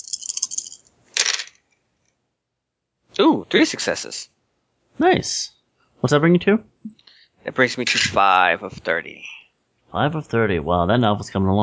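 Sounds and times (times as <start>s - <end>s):
dice rolled during a tabletop game: 0.0s - 1.6s
speech: 3.2s - 4.3s, 5.0s - 11.6s.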